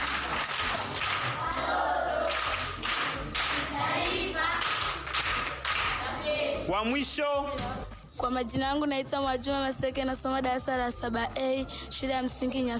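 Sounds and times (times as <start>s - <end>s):
group applauding at a primary school gathering: 0.0s - 6.2s
speech: 6.8s - 12.7s.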